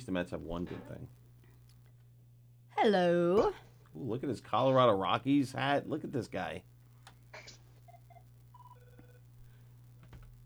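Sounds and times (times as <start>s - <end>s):
speech: 0.0s - 1.2s, 2.8s - 6.7s
telephone ringing with short electronic tones: 8.5s - 9.3s.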